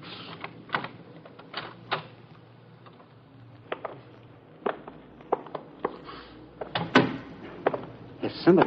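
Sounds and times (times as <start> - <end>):
door clunk: 6.6 - 7.9
speech: 8.5 - 8.6.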